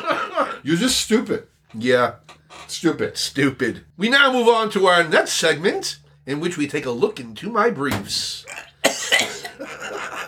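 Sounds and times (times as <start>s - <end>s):
laughter: 0.0s - 0.7s, 9.5s - 10.2s
speech: 0.6s - 8.7s
person coughing: 8.5s - 9.7s.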